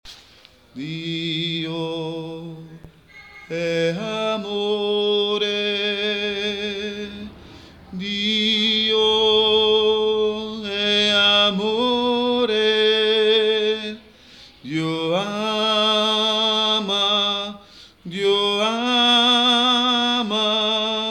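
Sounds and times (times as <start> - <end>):
tenor singing: 0.8 - 21.1.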